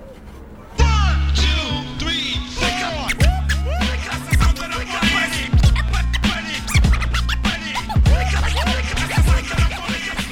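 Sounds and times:
beat-driven track mixed by a DJ: 0.8 - 10.3
heavy pulsing bassline: 0.8 - 10.3
DJ rapidly scratching a record: 2.6 - 10.3.

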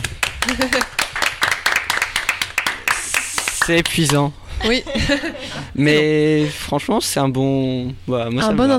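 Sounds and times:
small group clapping hands applauding the end of a live broadcast: 0.0 - 4.3
person laughing: 0.4 - 1.0, 4.6 - 6.6
speech: 0.5 - 1.0, 3.7 - 8.7.

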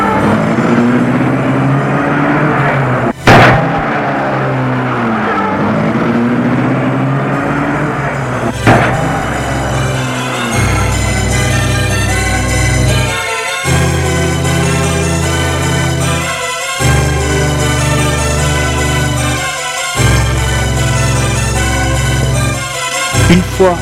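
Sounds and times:
car engine humming: 0.0 - 23.7
sharp loud thuds: 3.1 - 4.9, 8.5 - 10.8.

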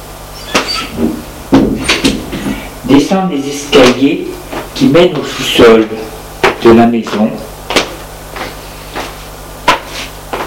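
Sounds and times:
door creaking and clunking open: 0.4 - 2.5
speech: 3.1 - 7.5.

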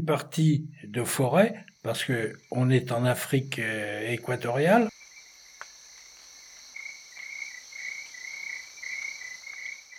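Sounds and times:
speech: 0.0 - 4.9
constant insect hum: 0.0 - 9.9
crickets chirping in forest on volcano slopes in equatorial Africa: 0.0 - 9.9.

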